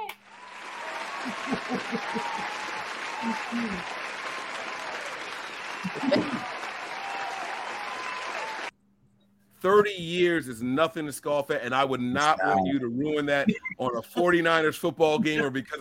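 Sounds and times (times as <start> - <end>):
crowd applauding: 0.2 - 8.7
speech: 1.2 - 2.6, 3.2 - 4.0, 5.8 - 6.3, 9.6 - 15.7
people chuckling: 1.2 - 3.9, 5.8 - 6.6, 12.0 - 14.4, 15.0 - 15.6.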